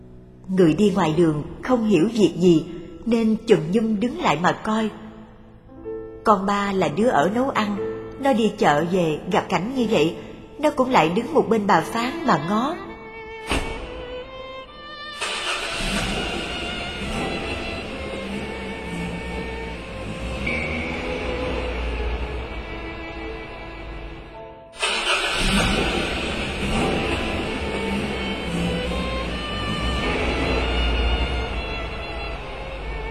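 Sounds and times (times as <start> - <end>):
speech: 0.5 - 5.0, 6.2 - 12.8
two cars driving off with engines revving: 15.2 - 33.0.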